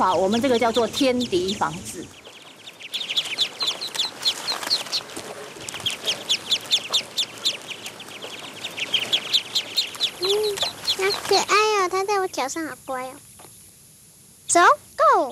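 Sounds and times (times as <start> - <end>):
speech: 0.0 - 2.2, 11.0 - 13.3, 14.5 - 15.3
flock of ducks peeping and chattering in a rice paddy: 0.0 - 15.3.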